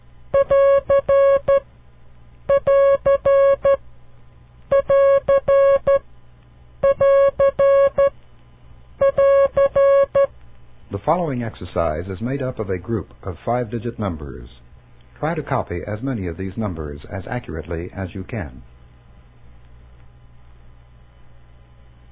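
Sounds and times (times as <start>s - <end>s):
Morse code sign for the end of a transmission: 0.4s - 1.6s, 2.5s - 3.8s, 4.7s - 6.0s, 6.8s - 8.2s, 9.0s - 10.3s
speech: 11.1s - 14.6s, 15.2s - 18.7s.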